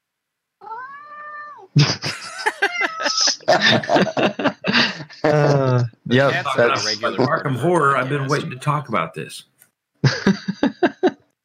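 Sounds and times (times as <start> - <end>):
cat meowing: 0.6 - 1.7, 2.7 - 3.4
speech: 1.8 - 4.4, 6.1 - 10.4
laughter: 1.8 - 9.0, 10.0 - 11.2.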